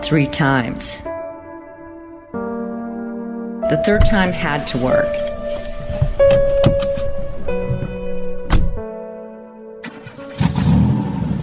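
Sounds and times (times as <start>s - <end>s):
speech: 0.0s - 1.1s, 3.7s - 5.3s
mechanical clicks and sharp thunks: 5.8s - 8.8s
SUV engine starting and idling: 9.8s - 11.4s.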